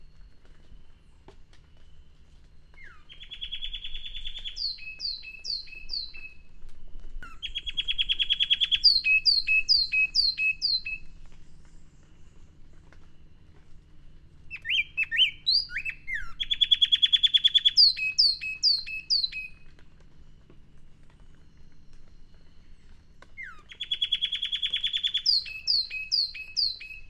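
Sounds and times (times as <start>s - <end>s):
Sharpe's wren song, Cinnycerthia olivascens: 2.7s - 6.4s, 7.3s - 11.8s, 14.5s - 19.6s, 23.3s - 27.0s.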